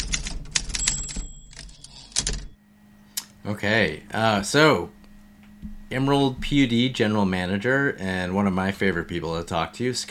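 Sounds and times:
typewriter keystrokes: 0:00.0 - 0:02.6
speech: 0:03.4 - 0:05.0, 0:05.9 - 0:10.0.

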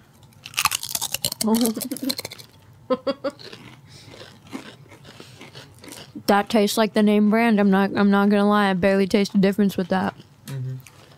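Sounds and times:
crunching and chewing potato chips: 0:00.1 - 0:02.6, 0:03.3 - 0:06.3, 0:09.8 - 0:11.1
speech: 0:01.4 - 0:02.3, 0:02.9 - 0:03.6, 0:06.3 - 0:10.2.

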